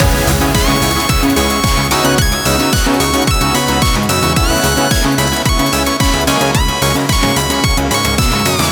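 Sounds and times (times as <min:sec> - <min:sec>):
chorus singing: 0:00.0 - 0:03.8
lead melody: 0:00.0 - 0:08.7.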